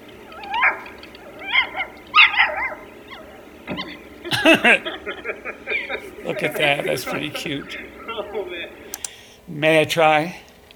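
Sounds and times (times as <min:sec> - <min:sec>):
dog whining and whimpering: 0:00.3 - 0:04.0
laughter: 0:03.3 - 0:09.0
speech: 0:03.7 - 0:08.8, 0:09.5 - 0:10.4.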